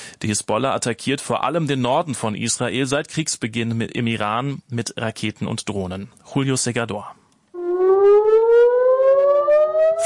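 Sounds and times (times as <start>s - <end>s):
speech: 0.2s - 7.2s
air raid warning siren wailing in northern Israel amid rocket fire: 7.6s - 10.0s.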